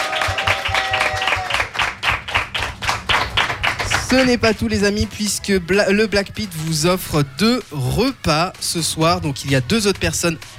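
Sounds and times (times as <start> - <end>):
group clapping: 0.0 - 4.9
speech: 4.1 - 10.5.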